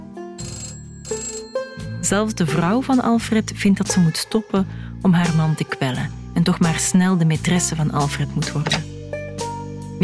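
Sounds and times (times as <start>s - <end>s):
telephone ringtone playing a short repeating electronic melody: 0.4s - 2.7s
speech: 2.0s - 8.9s.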